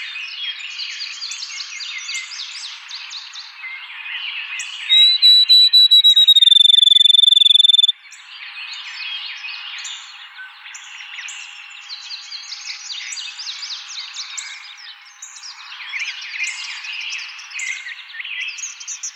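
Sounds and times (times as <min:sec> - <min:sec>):
many birds chirping and twittering: 0:04.2 - 0:07.9, 0:10.7 - 0:19.1
field sparrow singing whistled notes into a trill: 0:04.9 - 0:07.9.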